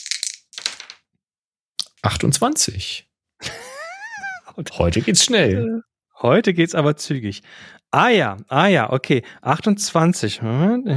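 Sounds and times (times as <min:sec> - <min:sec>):
dice clattering across a hard surface: 0:00.0 - 0:01.1
speech: 0:02.0 - 0:03.1, 0:04.6 - 0:10.9
laughter: 0:03.4 - 0:05.7.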